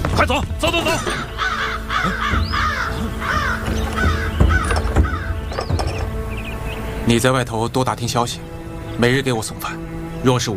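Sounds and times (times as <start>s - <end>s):
speech: 0.2s - 1.3s, 2.0s - 2.5s, 7.1s - 10.5s
crows cawing: 0.8s - 6.2s.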